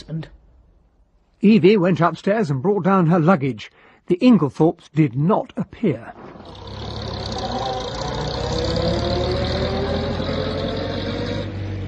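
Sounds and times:
speech: 0:00.1 - 0:00.4, 0:01.4 - 0:06.8
car engine driving off down a drive: 0:06.2 - 0:11.8.

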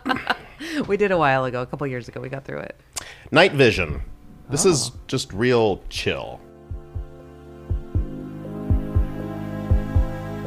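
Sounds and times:
speech: 0:00.6 - 0:06.5
deep steady heartbeat thumping at the start of a song: 0:03.8 - 0:10.2
soft sustained synth drone: 0:06.5 - 0:10.4.

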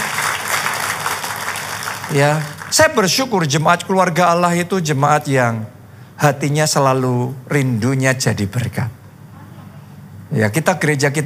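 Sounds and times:
crowd clapping: 0:00.0 - 0:03.1
speech: 0:02.1 - 0:09.0, 0:10.3 - 0:11.2.

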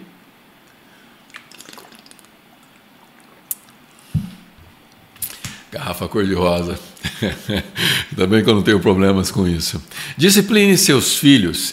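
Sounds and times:
liquid sloshing in a bottle: 0:01.2 - 0:04.6
person swallowing: 0:01.3 - 0:04.6
speech: 0:05.7 - 0:11.7
laughter: 0:07.0 - 0:08.1.

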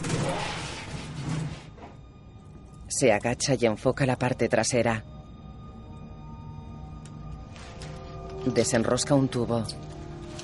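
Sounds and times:
heavy washing machine scraping across a hard floor: 0:00.0 - 0:01.9
speech: 0:02.9 - 0:05.2, 0:08.5 - 0:10.0.

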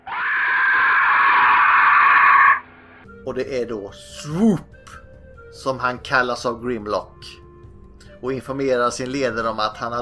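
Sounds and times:
robotic pterodactyl letting out a loud shrill scream: 0:00.0 - 0:02.6
speech: 0:03.3 - 0:07.4, 0:08.2 - 0:09.9.

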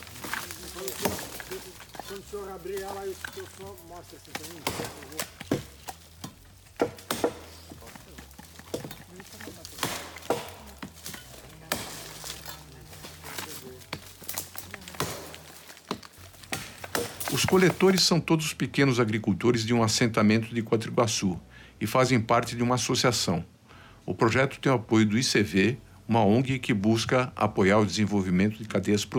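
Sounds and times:
faint voices murmuring: 0:00.0 - 0:17.9
machetes cracking open Brazil nut pods: 0:00.0 - 0:18.0
speech: 0:02.2 - 0:05.4, 0:17.4 - 0:29.1.

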